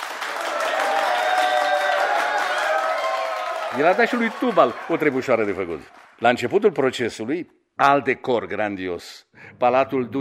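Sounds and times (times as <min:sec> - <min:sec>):
large crowd applauding: 0:00.0 - 0:07.0
faint cheering: 0:00.2 - 0:05.9
speech: 0:03.8 - 0:10.1.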